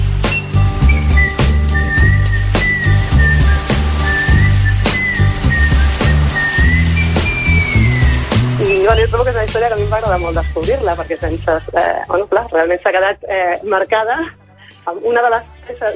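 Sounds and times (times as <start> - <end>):
steady drums in a band backing: 0.0 - 11.5
bass in a band backing: 0.0 - 15.9
person whistling a lilting melody: 0.2 - 9.2
speech: 9.2 - 15.9.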